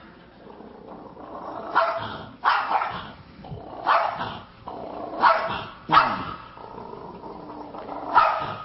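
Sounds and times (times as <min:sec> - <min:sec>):
dog growling: 0:00.1 - 0:08.6
dog barking: 0:01.7 - 0:03.2, 0:03.8 - 0:04.4, 0:05.2 - 0:06.5, 0:08.1 - 0:08.6.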